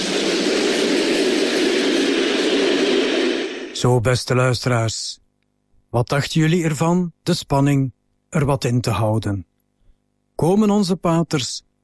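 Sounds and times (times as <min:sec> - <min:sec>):
train braking as it rolls into a station: 0:00.0 - 0:03.9
speech: 0:03.8 - 0:05.2, 0:05.9 - 0:09.5, 0:10.4 - 0:11.7.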